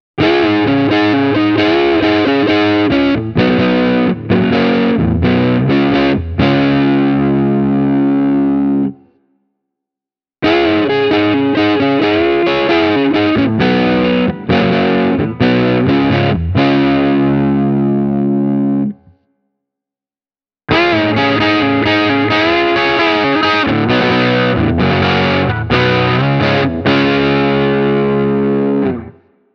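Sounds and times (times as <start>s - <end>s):
crunchy rock-crunch guitar on the neck pickup: 0.2s - 9.0s, 10.4s - 19.0s, 20.7s - 29.3s.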